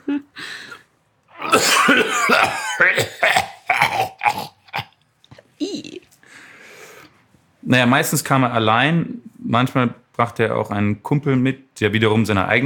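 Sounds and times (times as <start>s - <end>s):
throat-clearing: 1.3s - 6.0s
voice imitating a deep rasping demonic-sounding cough: 1.4s - 5.0s
speech: 1.6s - 3.2s, 7.7s - 12.6s.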